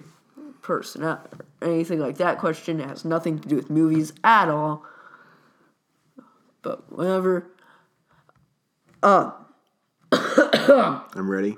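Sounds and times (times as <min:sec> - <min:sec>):
speech: 0:00.7 - 0:04.9, 0:06.6 - 0:07.6, 0:09.0 - 0:09.4, 0:10.6 - 0:11.5
person coughing: 0:10.1 - 0:11.1.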